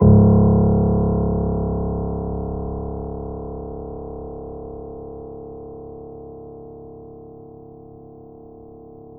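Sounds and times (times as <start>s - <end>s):
soft grand piano note C sharp zero: 0.0s - 5.7s.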